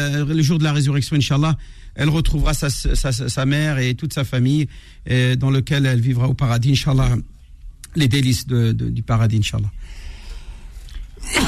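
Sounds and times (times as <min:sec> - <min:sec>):
speech: 0:00.0 - 0:07.3, 0:07.9 - 0:10.0, 0:11.2 - 0:11.4
low noise: 0:00.0 - 0:11.4
person coughing from a tickle in the throat: 0:11.2 - 0:11.4.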